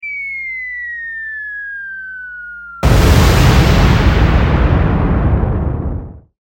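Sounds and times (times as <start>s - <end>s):
explosion from a fall: 2.8s - 6.3s.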